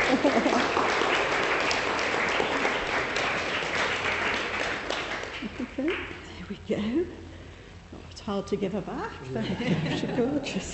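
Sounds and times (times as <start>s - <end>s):
laughter: 0.0s - 0.8s, 9.3s - 10.7s
crowd clapping: 0.0s - 6.3s
speech: 8.3s - 10.7s.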